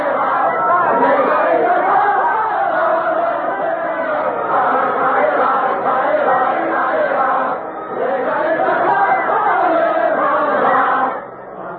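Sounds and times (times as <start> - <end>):
large crowd singing a revolutionary marching song: 0.0 - 11.7.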